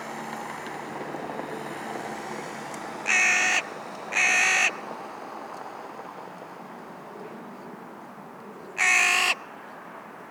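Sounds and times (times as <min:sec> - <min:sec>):
steady background noise: 0:00.0 - 0:10.2
Carrion crow Corvus corone cawing: 0:03.1 - 0:04.8, 0:08.8 - 0:09.4.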